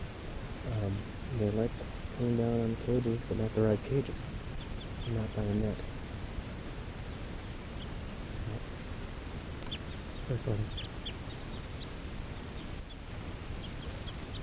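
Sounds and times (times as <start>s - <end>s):
steady hiss: 0.0s - 14.4s
speech: 0.8s - 4.4s, 5.0s - 5.9s, 10.3s - 10.8s
crossbills giving short high kip calls in trees: 4.1s - 5.9s, 7.1s - 8.6s, 9.6s - 14.4s.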